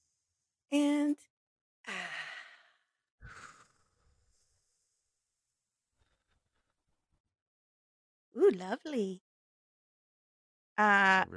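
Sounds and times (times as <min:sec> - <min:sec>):
soft breath: 0:01.9 - 0:05.0
deep breath in and out: 0:01.9 - 0:05.4
speech: 0:08.5 - 0:09.3, 0:10.8 - 0:11.3.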